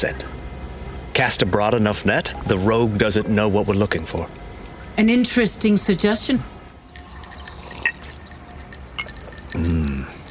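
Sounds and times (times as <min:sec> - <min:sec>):
speech: 0:00.0 - 0:00.3, 0:01.2 - 0:04.4, 0:05.0 - 0:06.6
liquid pouring into a glass while mixing an old-fashioned cocktail: 0:06.8 - 0:09.9
glass clinks: 0:06.8 - 0:10.2.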